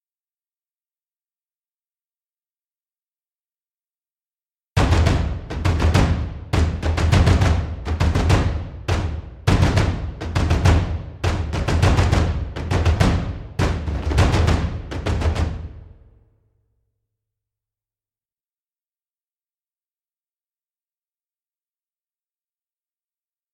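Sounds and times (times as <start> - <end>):
big drums: 4.8 - 16.1.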